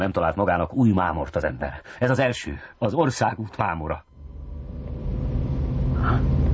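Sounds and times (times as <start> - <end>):
speech: 0.0 - 4.1
newly bought car engine running: 4.1 - 6.5.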